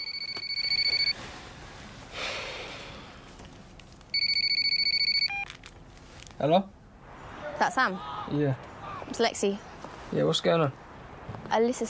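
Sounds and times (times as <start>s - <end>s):
phone ringing with rapid high trilling electronic chirps: 0.0s - 1.2s, 4.1s - 5.5s
soft breathy sound: 1.4s - 3.3s
speech: 6.4s - 6.8s, 7.6s - 10.8s, 11.5s - 11.8s.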